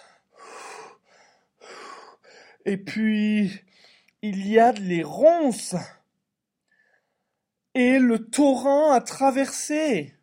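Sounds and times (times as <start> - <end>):
person panting heavily out of breath: 0.0 - 2.6
speech: 2.6 - 6.0, 7.8 - 10.2.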